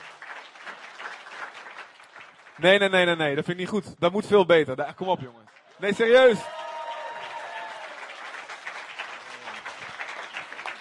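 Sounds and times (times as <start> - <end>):
crowd applauding: 0.0 - 3.2, 5.4 - 10.7
speech: 2.6 - 6.6.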